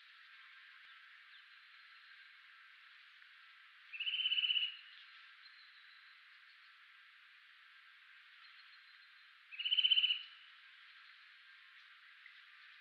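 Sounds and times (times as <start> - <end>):
soft hiss: 0.0 - 12.7
Eurasian nuthatch trill: 3.9 - 5.9, 9.5 - 10.4.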